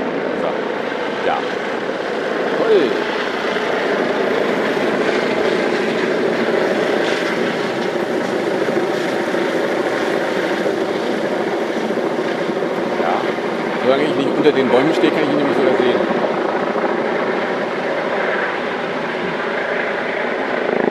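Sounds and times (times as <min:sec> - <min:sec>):
helicopter circling overhead outdoors on a search: 0:00.0 - 0:20.8
speech: 0:01.2 - 0:01.6, 0:14.4 - 0:15.5.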